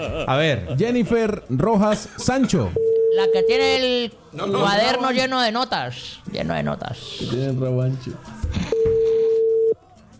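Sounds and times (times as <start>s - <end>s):
speech: 0.0s - 8.8s
telephone ringback tone: 2.8s - 3.6s, 8.7s - 9.8s.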